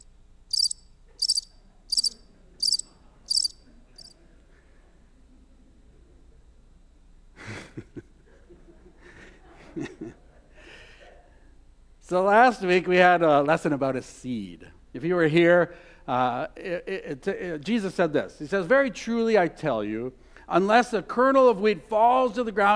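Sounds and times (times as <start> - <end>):
crickets chirping: 0.0 - 4.1
laughter: 7.4 - 11.4
speech: 12.1 - 22.7.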